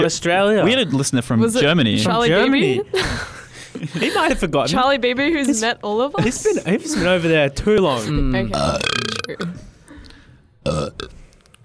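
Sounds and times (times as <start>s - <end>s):
speech: 0.0s - 9.7s
loud drawn-out belch: 8.5s - 9.6s, 10.6s - 11.2s.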